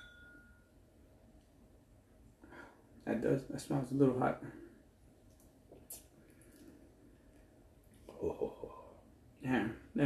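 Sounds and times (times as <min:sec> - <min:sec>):
glasses clinking in a toast: 0:00.0 - 0:00.6
low steady hum: 0:00.0 - 0:10.0
speech: 0:03.0 - 0:04.7.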